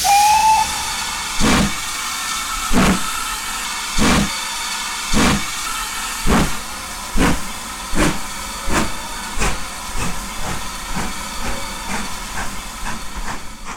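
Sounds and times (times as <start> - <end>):
steam locomotive whistle: 0.0 - 7.3
steam locomotive pulling a train hissing and chuffing: 0.0 - 13.7.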